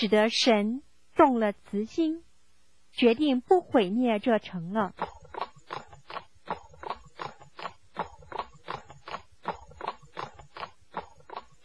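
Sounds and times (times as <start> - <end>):
speech: 0.0 - 2.3, 3.0 - 5.8
donkey hooves clip-clopping while walking: 5.0 - 11.6.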